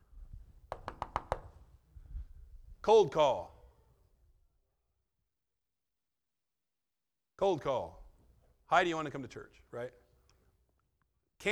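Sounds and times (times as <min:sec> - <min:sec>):
knocking on a front door: 0:00.7 - 0:01.6
speech: 0:02.8 - 0:03.5, 0:07.4 - 0:08.0, 0:08.7 - 0:10.0.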